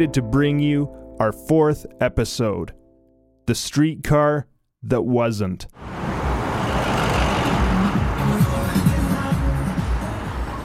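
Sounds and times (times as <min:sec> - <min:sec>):
speech: 0:00.0 - 0:02.8, 0:03.5 - 0:06.0
street traffic of cars, trucks and buses on an avenue: 0:05.8 - 0:10.6.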